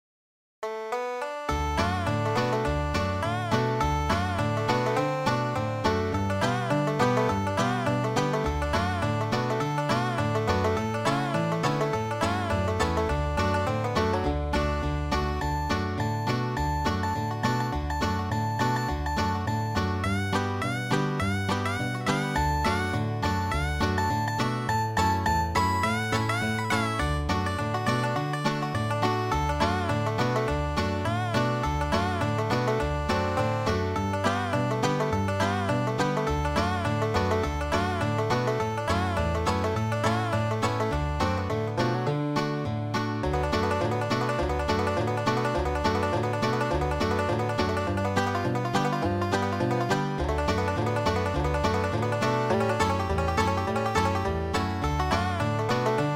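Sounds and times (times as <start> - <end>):
banjo riff: 0.6 - 56.1.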